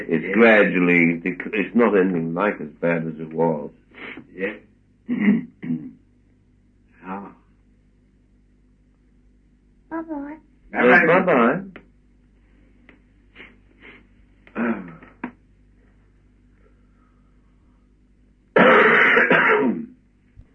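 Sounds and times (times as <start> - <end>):
speech: 0.0 - 6.0, 9.9 - 11.8
person clearing throat: 4.4 - 6.0, 14.5 - 15.2, 18.6 - 20.0
person coughing: 5.1 - 6.0, 18.6 - 19.9.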